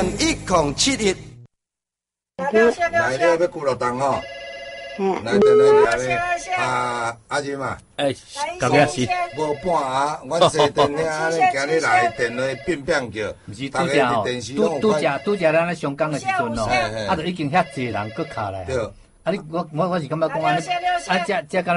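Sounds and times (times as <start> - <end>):
speech: 0.0 - 1.3, 2.5 - 4.4, 5.0 - 21.7
telephone ringing for an incoming call on a call-in sales broadcast: 4.0 - 6.2, 8.8 - 10.1, 11.6 - 13.0, 14.6 - 15.6, 17.2 - 18.7.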